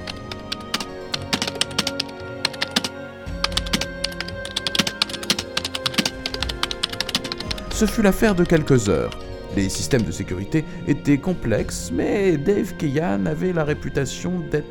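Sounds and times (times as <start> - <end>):
fast typing on a computer keyboard: 0.0 - 7.9
speech: 7.8 - 14.6.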